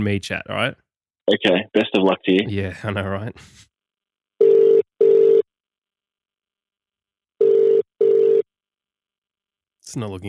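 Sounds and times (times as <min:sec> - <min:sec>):
speech: 0:00.0 - 0:03.7, 0:09.9 - 0:10.2
phone ringback tone of short steady buzzes: 0:04.4 - 0:05.5, 0:07.4 - 0:08.5.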